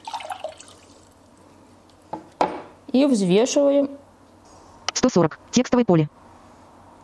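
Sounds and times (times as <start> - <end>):
liquid splashing into a glass on a weighing scale: 0.0 - 1.1
speech: 2.9 - 4.0, 5.0 - 6.2.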